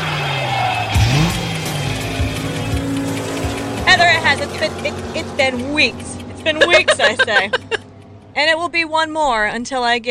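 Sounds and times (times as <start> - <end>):
car engine revving over an idling rumble: 0.0 - 9.6
speech: 4.3 - 7.8, 8.4 - 10.0
laughter: 6.4 - 7.9.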